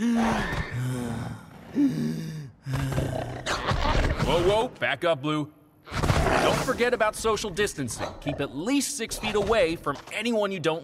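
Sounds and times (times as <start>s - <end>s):
person imitating labored gasping breath: 0.0s - 3.6s
speech: 0.0s - 10.8s.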